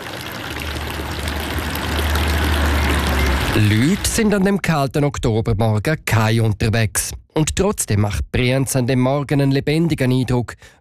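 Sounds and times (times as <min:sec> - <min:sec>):
village fountain water splashing on a misty morning in the Albula valley: 0:00.0 - 0:04.3
speech: 0:03.6 - 0:10.7.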